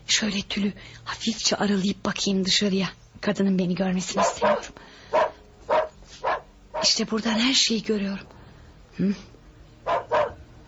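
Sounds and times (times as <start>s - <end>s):
speech: 0.1s - 5.3s, 6.8s - 8.3s, 9.0s - 9.3s
dogs barking as police arrive at a house: 4.1s - 7.1s, 9.8s - 10.5s.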